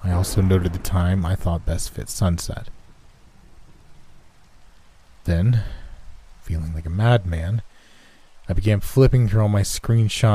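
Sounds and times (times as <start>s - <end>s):
distant thunder: 0.0s - 6.3s
steady rain: 0.0s - 10.3s
speech: 0.1s - 2.8s, 5.3s - 5.8s, 6.5s - 7.7s, 8.5s - 10.3s.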